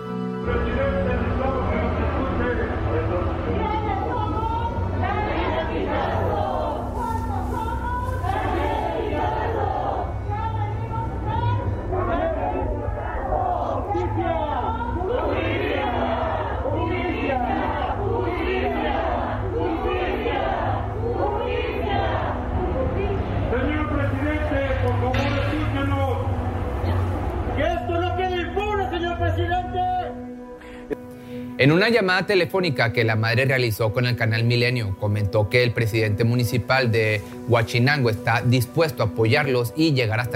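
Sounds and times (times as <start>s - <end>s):
protest crowd chanting and yelling in front of the Municipal Palace: 0.4s - 30.6s
speech: 31.6s - 40.3s.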